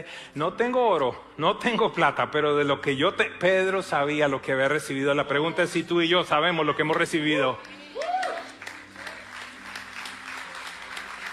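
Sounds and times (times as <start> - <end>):
speech: 0.0 - 7.8
audience applauding: 7.0 - 11.3.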